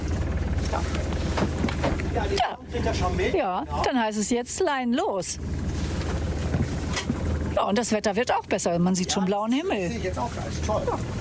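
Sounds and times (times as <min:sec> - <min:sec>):
boat engine idling before casting off: 0:00.0 - 0:11.1
speech: 0:02.2 - 0:05.8, 0:07.6 - 0:11.1.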